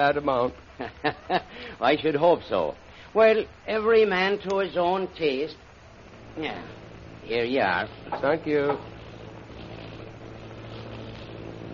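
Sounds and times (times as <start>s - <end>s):
speech: 0.0s - 5.6s, 6.4s - 8.9s
airplane engine droning: 5.0s - 11.7s.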